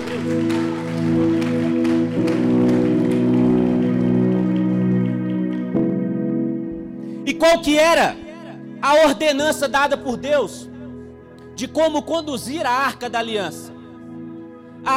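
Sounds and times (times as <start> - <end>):
audience applauding: 0.0 - 5.9
sustained organ-like keyboard chords: 0.0 - 14.9
speech: 7.4 - 8.2, 8.8 - 10.7, 11.6 - 13.7.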